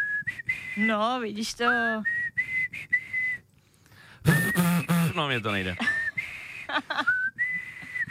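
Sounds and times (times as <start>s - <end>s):
person whistling a melody: 0.0s - 1.0s, 2.0s - 3.4s, 4.2s - 5.2s, 5.8s - 8.1s
speech: 0.8s - 2.2s, 5.2s - 5.9s, 6.7s - 7.2s.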